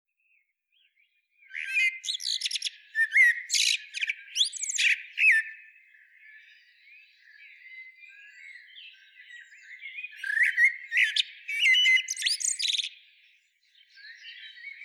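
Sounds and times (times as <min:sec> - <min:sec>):
common blackbird Turdus merula singing fluty phrases: 0:00.3 - 0:14.8.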